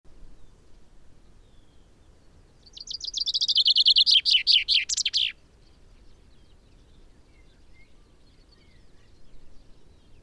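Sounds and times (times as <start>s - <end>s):
common chaffinch rattling descending song phrase: 2.6s - 5.4s.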